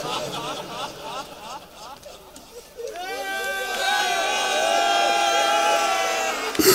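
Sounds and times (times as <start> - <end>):
crowd of people weeping and wailing at a mourning gathering: 0.0 - 6.7
laughter: 0.0 - 6.7.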